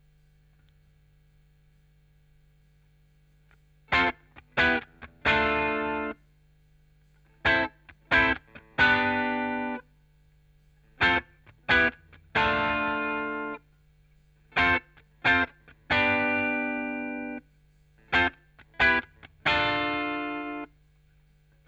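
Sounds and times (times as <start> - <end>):
guitar with chorus effect: 3.6 - 6.2, 7.2 - 10.0, 10.8 - 20.8.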